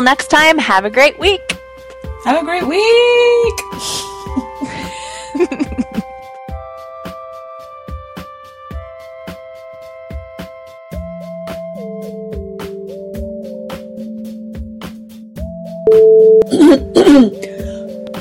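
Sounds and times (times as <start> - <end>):
speech: 0.0 - 1.5, 2.2 - 4.1, 17.0 - 17.4
soft sustained music: 0.0 - 18.1
person clearing throat: 16.4 - 17.4
person coughing: 16.5 - 17.4.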